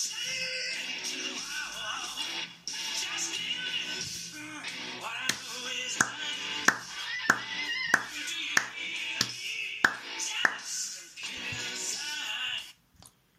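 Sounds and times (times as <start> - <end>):
song playing: 0.2 - 12.5
crisp hand claps in rhythm: 5.2 - 10.8.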